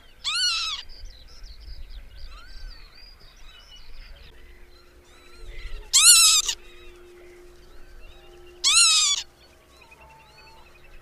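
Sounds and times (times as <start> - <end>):
faint small bird notes: 0.0 - 11.0
northern lapwing wheezy call: 4.6 - 10.9.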